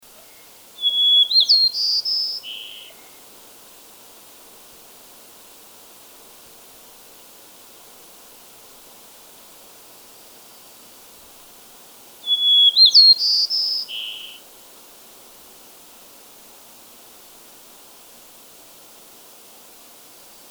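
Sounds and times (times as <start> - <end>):
White-crowned Sparrow Zonotrichia leucophrys gambelii: 0.1 - 3.3, 12.3 - 14.4.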